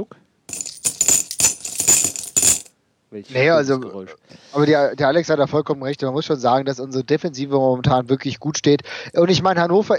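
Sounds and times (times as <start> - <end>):
speech: 0.0 - 0.2, 3.1 - 9.9
coins dropping into a piggy bank used as a penalty jar: 0.5 - 2.7.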